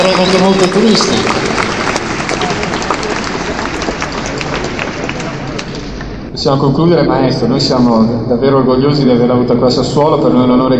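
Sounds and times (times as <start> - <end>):
speech: 0.0 - 1.6, 6.4 - 10.7
crowd applauding: 0.0 - 6.2.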